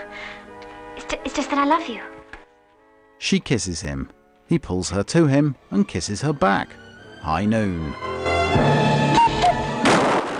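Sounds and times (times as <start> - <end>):
speech: 1.2 - 2.2, 3.2 - 8.9
gunshots fired at a cuckoo clock: 9.8 - 10.3.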